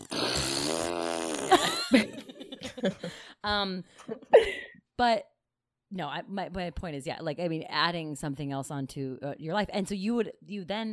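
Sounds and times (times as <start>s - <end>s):
person imitating a fart with the mouth: 0.0s - 1.9s
laughter: 1.5s - 3.2s
speech: 1.5s - 5.3s, 5.9s - 10.9s.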